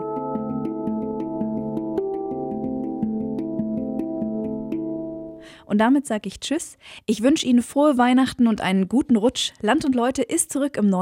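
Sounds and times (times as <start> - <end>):
handpan playing: 0.0 - 5.5
speech: 5.7 - 11.0.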